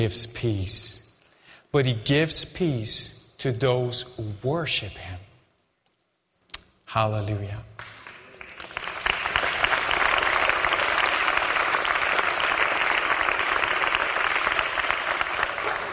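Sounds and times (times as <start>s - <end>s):
speech: 0.0s - 1.0s, 1.7s - 5.2s, 6.9s - 7.7s
crowd clapping at a Christian worship service: 7.8s - 15.9s.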